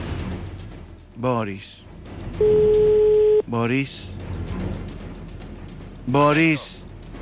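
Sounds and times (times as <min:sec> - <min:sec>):
speech: 0:01.2 - 0:04.2, 0:06.1 - 0:06.9
telephone line steady loud electronic ringing tone: 0:02.4 - 0:03.4.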